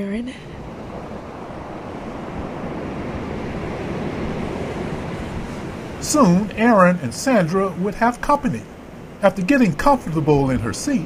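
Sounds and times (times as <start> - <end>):
speech: 0.0 - 0.6, 6.0 - 11.0
ocean surf washing: 0.0 - 11.0
soft sea breeze blowing: 0.0 - 11.0.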